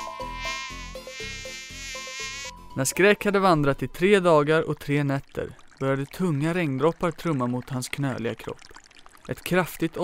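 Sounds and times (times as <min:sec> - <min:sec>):
mosquito buzzing: 0:00.0 - 0:02.6
speech: 0:02.8 - 0:08.7, 0:09.3 - 0:10.0.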